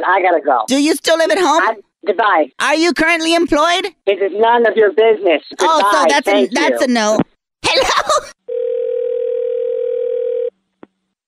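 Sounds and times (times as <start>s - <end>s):
speech: 0.0s - 8.4s
telephone dial tone after hang-up: 8.5s - 10.5s.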